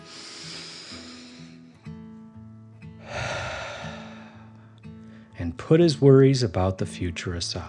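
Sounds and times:
deep breathing in and out: 0:00.0 - 0:01.8, 0:03.0 - 0:05.4
soft sustained music: 0:00.1 - 0:07.6
speech: 0:05.4 - 0:07.6.

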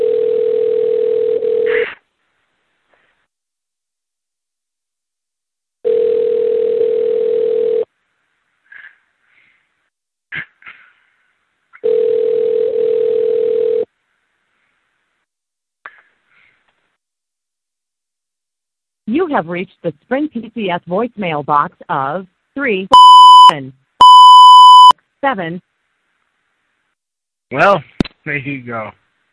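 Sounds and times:
ringback tone of an unanswered telephone call: 0:00.0 - 0:01.8, 0:05.9 - 0:07.9, 0:11.8 - 0:13.9, 0:22.9 - 0:24.9
speech: 0:19.3 - 0:23.8, 0:25.2 - 0:25.7, 0:27.5 - 0:29.0.

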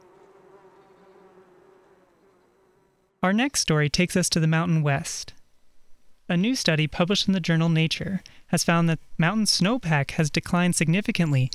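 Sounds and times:
bees buzzing: 0:00.0 - 0:03.3
speech: 0:03.2 - 0:05.4, 0:06.3 - 0:11.5.

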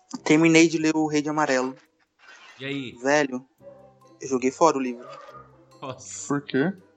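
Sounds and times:
speech: 0:00.3 - 0:01.9, 0:02.6 - 0:03.5, 0:04.2 - 0:05.2, 0:05.9 - 0:06.9
dog barking loudly: 0:05.0 - 0:05.6.

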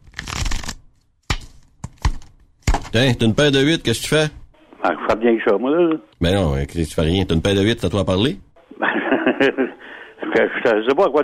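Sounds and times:
deck of playing cards riffle-shuffled over the telephone: 0:00.0 - 0:00.8
speech: 0:02.9 - 0:11.2
laughter: 0:08.7 - 0:11.2.

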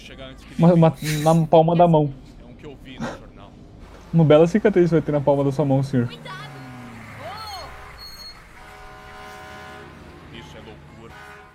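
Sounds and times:
rumbling street background: 0:00.0 - 0:11.5
speech: 0:00.1 - 0:02.2, 0:04.1 - 0:06.5
fire truck horn blasts: 0:06.2 - 0:11.5.

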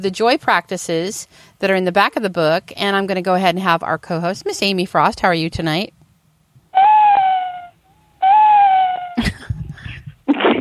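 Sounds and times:
speech: 0:00.0 - 0:06.0
person imitating owl hooting calls: 0:06.8 - 0:09.2.

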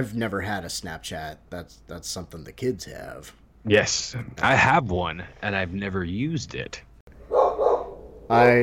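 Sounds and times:
speech: 0:00.0 - 0:06.9, 0:08.3 - 0:08.6
dog barking: 0:07.3 - 0:08.1.

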